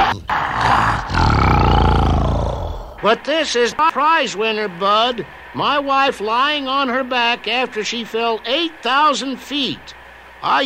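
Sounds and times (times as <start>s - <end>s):
lion roaring: 0.0s - 3.0s
speech: 3.0s - 10.6s.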